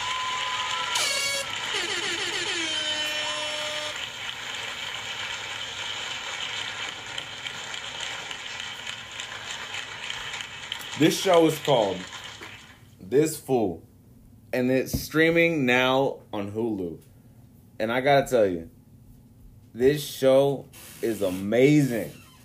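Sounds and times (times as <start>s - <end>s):
air horn blasts: 0.8s - 4.0s
speech: 11.0s - 12.2s, 13.1s - 13.9s, 14.5s - 17.1s, 17.8s - 18.8s, 19.8s - 22.2s.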